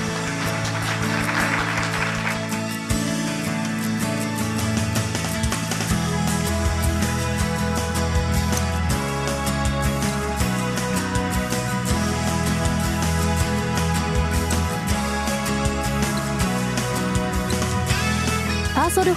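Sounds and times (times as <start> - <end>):
audience applause: 0.0 - 2.8
sustained musical backing: 0.0 - 19.1.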